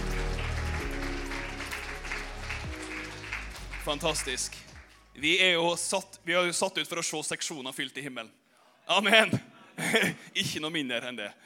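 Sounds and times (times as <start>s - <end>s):
crowd applauding: 0.0s - 5.2s
speech: 3.9s - 11.4s.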